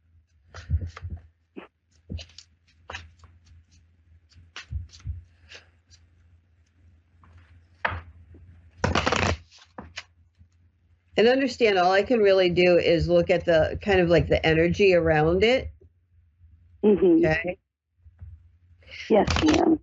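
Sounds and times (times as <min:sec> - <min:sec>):
low steady hum: 0:00.0 - 0:19.8
speech: 0:00.6 - 0:01.1, 0:11.2 - 0:15.7, 0:16.8 - 0:17.6, 0:19.1 - 0:19.8
Lenormand cards being shuffled: 0:02.0 - 0:06.2, 0:08.8 - 0:10.1, 0:19.2 - 0:19.7.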